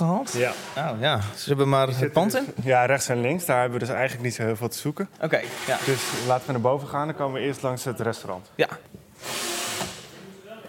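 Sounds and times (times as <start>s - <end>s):
speech: 0.2s - 8.9s
power drill whirring during building renovation work: 5.4s - 6.3s, 9.2s - 10.2s.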